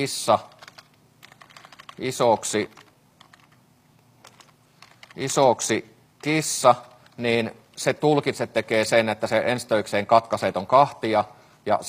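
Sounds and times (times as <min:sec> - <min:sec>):
speech: 0:00.0 - 0:00.6, 0:02.0 - 0:02.8, 0:05.2 - 0:11.8
typing on a computer keyboard: 0:00.5 - 0:03.6, 0:04.2 - 0:05.4.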